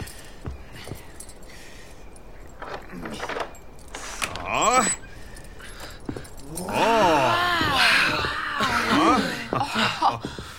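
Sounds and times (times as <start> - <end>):
faint rattle of keys being handled at a door: 0.0 - 7.8
metallic jingle of keys: 0.0 - 9.2
laughter: 6.7 - 10.4.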